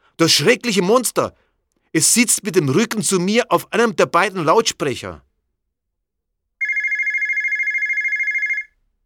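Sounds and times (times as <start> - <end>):
speech: 0.2 - 5.3
mobile phone ringing with electronic trill: 6.6 - 8.8.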